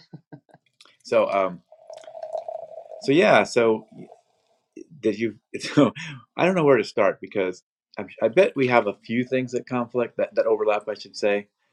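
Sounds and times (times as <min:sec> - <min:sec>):
speech: 0:01.1 - 0:01.7, 0:03.0 - 0:04.0, 0:05.0 - 0:11.6
drink poured into a glass: 0:01.3 - 0:04.6.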